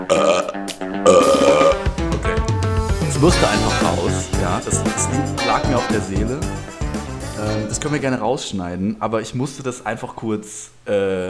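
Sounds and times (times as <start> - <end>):
loud deliberately forced burp: 0.0 - 1.9
speech: 1.1 - 1.5, 3.2 - 6.8, 7.4 - 11.2.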